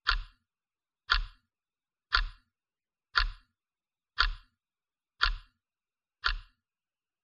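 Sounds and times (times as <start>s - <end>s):
clock second hand ticking: 0.0s - 1.5s, 2.1s - 4.6s, 5.2s - 5.6s, 6.2s - 7.2s.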